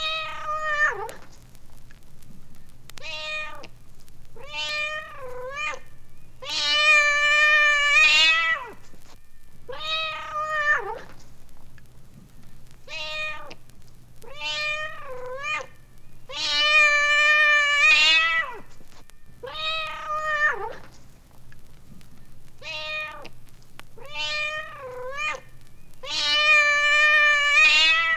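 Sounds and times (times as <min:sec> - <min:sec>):
cat meowing: 0:00.0 - 0:01.2, 0:03.0 - 0:03.7, 0:04.4 - 0:08.8, 0:09.7 - 0:11.1, 0:12.9 - 0:13.6, 0:14.2 - 0:18.7, 0:19.4 - 0:20.9, 0:22.6 - 0:23.3, 0:24.0 - 0:28.1
faint low hum: 0:00.0 - 0:28.1.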